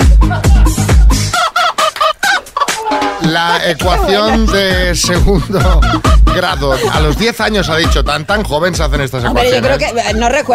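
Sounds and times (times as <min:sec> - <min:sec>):
laughter: 0:00.0 - 0:01.4, 0:02.4 - 0:09.7
hen clucking: 0:00.9 - 0:08.3
speech: 0:03.4 - 0:10.5.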